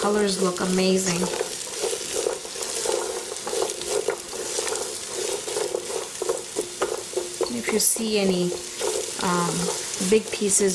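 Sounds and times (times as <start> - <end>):
speech: 0.0 - 1.4, 7.6 - 10.7
peppers, celery and onion sizzling and frying in a pan: 0.0 - 10.7.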